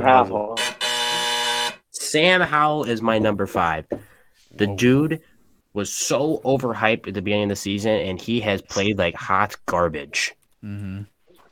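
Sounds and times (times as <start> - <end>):
speech: 0.0 - 0.6, 2.1 - 11.1
loud flat electronic buzzer: 0.5 - 1.9.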